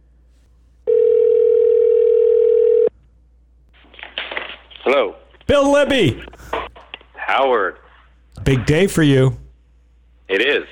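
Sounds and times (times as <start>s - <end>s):
telephone dial tone while calling a guest: 0.9s - 2.9s
speech: 4.9s - 6.4s, 7.3s - 7.8s, 8.5s - 9.4s.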